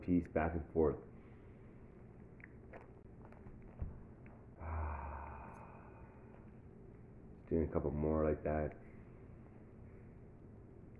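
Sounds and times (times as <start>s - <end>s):
speech: 0.0s - 1.1s, 7.5s - 8.9s
slow deep breathing in a calming exercise: 4.6s - 6.6s.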